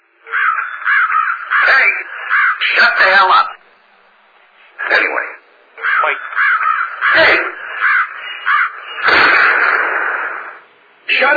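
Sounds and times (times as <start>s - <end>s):
crows cawing: 0.2s - 2.7s, 5.8s - 9.8s
speech: 2.8s - 3.5s, 5.0s - 5.3s.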